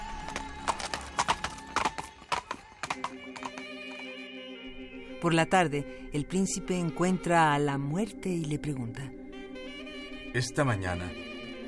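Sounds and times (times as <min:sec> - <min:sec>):
horse hooves clip-clopping: 0:00.0 - 0:04.2
speech: 0:05.2 - 0:09.2, 0:10.3 - 0:11.2.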